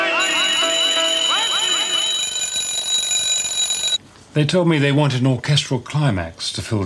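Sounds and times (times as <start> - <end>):
alarm clock ringing: 0.2 - 4.0
speech: 4.4 - 6.8.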